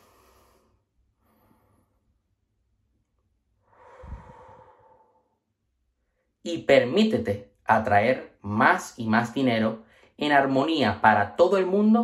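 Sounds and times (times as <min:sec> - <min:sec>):
deep breath in and out: 0:00.0 - 0:02.2, 0:03.6 - 0:06.4, 0:09.8 - 0:10.2
speech: 0:06.4 - 0:12.0.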